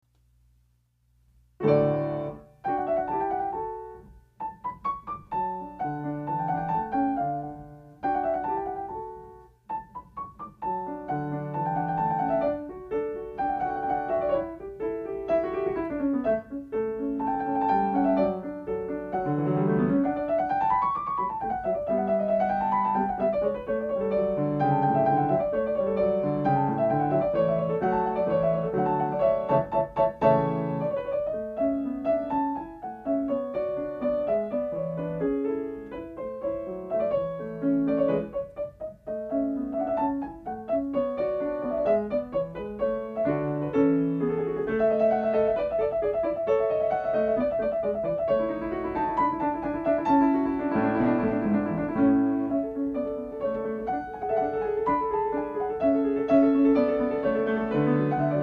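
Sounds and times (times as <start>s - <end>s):
classical piano sonata in D: 1.2s - 58.4s.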